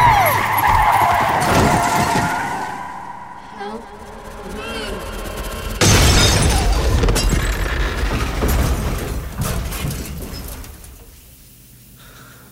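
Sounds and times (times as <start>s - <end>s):
car tires skidding as the car swerves: 0.0s - 8.6s
rumbling: 0.0s - 12.0s
crash-like burst: 0.5s - 9.8s.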